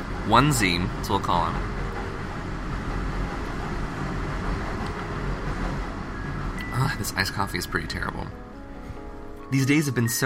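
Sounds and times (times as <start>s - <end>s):
train rumbling by: 0.0s - 10.2s
speech: 0.3s - 1.8s, 6.8s - 8.4s, 9.5s - 10.2s.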